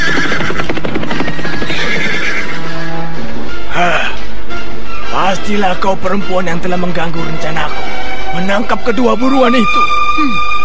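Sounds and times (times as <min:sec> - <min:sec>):
horses galloping rumble: 0:00.0 - 0:02.8
horses ridden fast by a group of men whinnying: 0:00.0 - 0:03.5
speech: 0:05.5 - 0:10.4.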